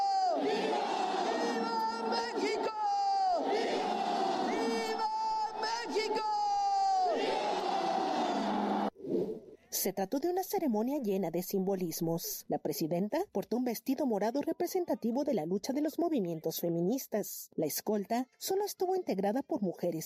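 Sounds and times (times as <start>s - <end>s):
huge crowd shouting in unison in a vast open square: 0.0s - 8.9s
speech: 9.8s - 20.0s.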